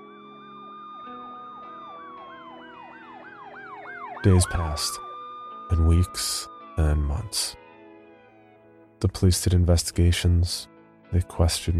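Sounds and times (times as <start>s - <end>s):
several emergency sirens yelping and holding tones: 0.0s - 7.6s
speech: 4.2s - 5.1s, 5.7s - 7.6s, 9.0s - 11.7s.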